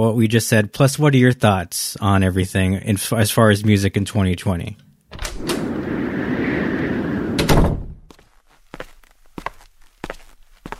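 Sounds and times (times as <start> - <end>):
speech: 0.0 - 5.5
door rattling and clunking as it is unlocked and opened: 5.1 - 6.0, 7.2 - 8.0
rumbling noise: 5.2 - 8.1
footsteps walking into the room: 8.0 - 10.7.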